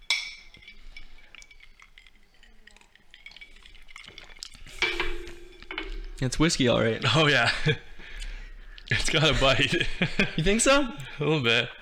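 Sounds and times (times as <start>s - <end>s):
glasses clinking in a toast: 0.0s - 7.8s
speech: 6.2s - 7.9s, 8.9s - 11.8s
laughter: 8.9s - 10.9s.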